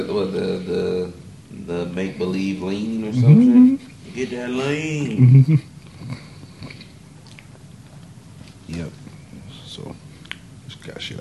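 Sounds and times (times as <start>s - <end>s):
speech: 0.0s - 5.7s
chewing food at the microphone: 5.8s - 9.2s.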